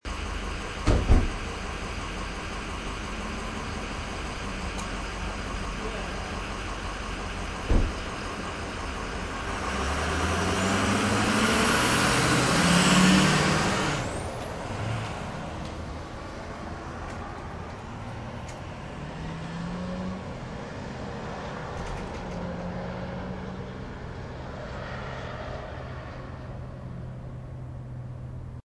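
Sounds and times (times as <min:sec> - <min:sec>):
diesel pickup truck engine at a bus stop: 0:00.0 - 0:28.6.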